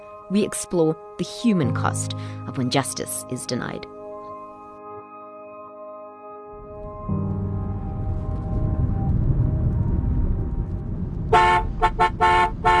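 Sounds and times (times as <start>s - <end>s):
speech: 0.3s - 4.0s
steady rumble of taxi engine and road noise: 6.8s - 12.7s
car horns honking in traffic during a taxi ride: 11.3s - 12.7s.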